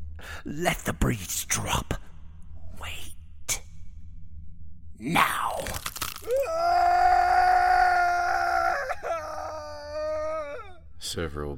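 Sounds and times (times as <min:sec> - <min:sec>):
speech: 0:00.4 - 0:02.0, 0:05.0 - 0:06.8, 0:11.1 - 0:11.5
person screaming: 0:05.6 - 0:10.8.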